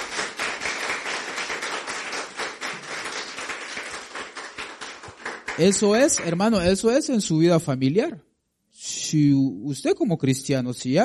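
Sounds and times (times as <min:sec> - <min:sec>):
church audience applauding: 0:00.0 - 0:06.6
speech: 0:05.6 - 0:08.3, 0:09.1 - 0:11.0.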